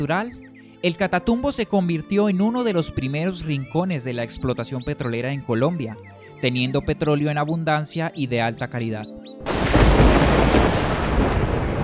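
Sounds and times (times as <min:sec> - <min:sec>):
speech: 0:00.0 - 0:09.7
stormy rain: 0:09.4 - 0:11.8
thunder from a lightning storm in the Catatumbo region of Colombia: 0:09.4 - 0:11.8.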